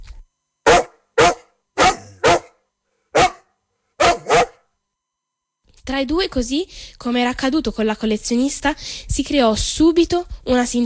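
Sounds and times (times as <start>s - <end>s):
stray dog barking: 0.6s - 4.6s
speech: 5.9s - 10.8s.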